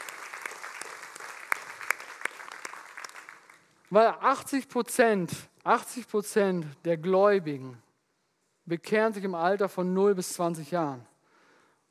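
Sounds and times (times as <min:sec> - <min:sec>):
church audience applause: 0:00.0 - 0:03.8
speech: 0:03.9 - 0:07.8, 0:08.7 - 0:11.1.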